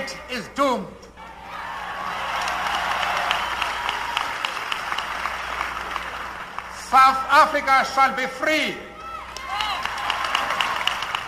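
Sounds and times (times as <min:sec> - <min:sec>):
speech: 0:00.1 - 0:01.1, 0:06.9 - 0:08.9
large crowd applauding in New York City: 0:01.4 - 0:07.3, 0:09.0 - 0:11.2.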